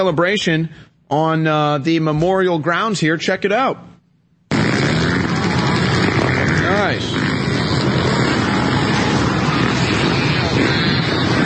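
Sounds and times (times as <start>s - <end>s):
speech: 0.0s - 3.9s, 6.7s - 7.4s
dirt bikes, ATVs and four-wheelers riding around memorial grounds: 4.5s - 11.4s.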